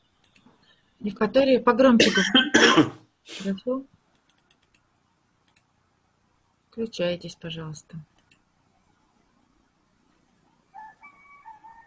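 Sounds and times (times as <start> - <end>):
low hum: 0.0 - 11.8
speech: 1.0 - 4.0, 6.8 - 8.1
rooster crowing: 10.7 - 11.8.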